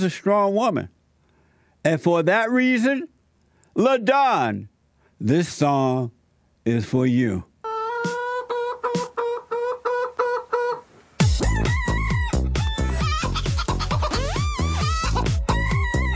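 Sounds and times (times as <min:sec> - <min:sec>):
speech: 0:00.0 - 0:01.0, 0:01.8 - 0:03.1, 0:03.8 - 0:07.5
loud bouncy tune built from chicken clucks: 0:07.6 - 0:16.1
thumping rhythm: 0:08.0 - 0:09.2, 0:11.2 - 0:16.1.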